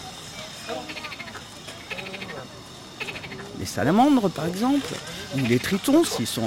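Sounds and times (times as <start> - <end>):
frog croaking in rapid rattling pulses: 0.7 - 3.6, 5.3 - 6.2
speech: 3.6 - 6.4.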